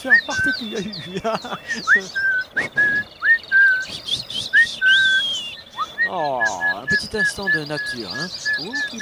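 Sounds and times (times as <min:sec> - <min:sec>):
laughter: 0:00.0 - 0:03.0
speech: 0:00.0 - 0:03.2, 0:06.1 - 0:09.0
faint noise: 0:00.0 - 0:09.0
small birds chirping outdoors while eating bread: 0:00.0 - 0:09.0.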